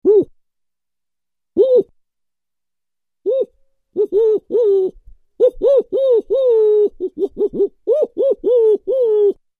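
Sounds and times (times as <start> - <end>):
person imitating owl call by voice: 0.0 - 0.4, 1.6 - 2.0, 3.2 - 9.4.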